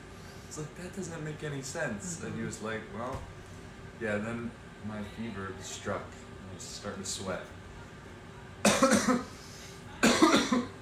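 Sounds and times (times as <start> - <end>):
speech: 0.5 - 3.4, 4.0 - 7.6, 8.8 - 9.4
person coughing harshly: 8.6 - 9.4, 10.0 - 10.7.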